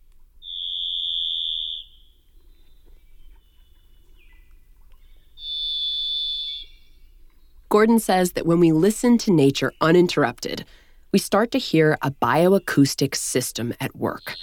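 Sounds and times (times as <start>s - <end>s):
thrush whistled song: 0.4s - 7.6s, 14.0s - 14.4s
speech: 7.7s - 14.4s.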